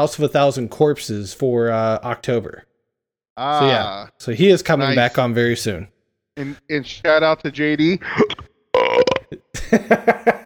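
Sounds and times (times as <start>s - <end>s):
speech: 0.0s - 2.7s, 3.4s - 8.4s, 9.0s - 10.4s
loud croaky human burp: 8.3s - 9.5s
laughter: 9.5s - 10.4s.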